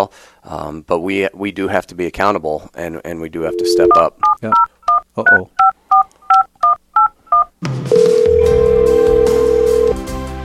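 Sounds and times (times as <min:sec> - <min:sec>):
speech: 0:00.0 - 0:05.6, 0:07.6 - 0:08.2
telephone keypad dialing tones: 0:03.5 - 0:10.0.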